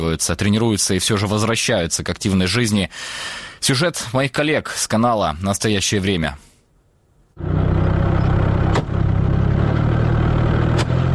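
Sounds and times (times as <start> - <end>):
speech: 0.0 - 6.5
Russian army remote mine-laying vehicle engine running while laying barriers: 7.4 - 11.1.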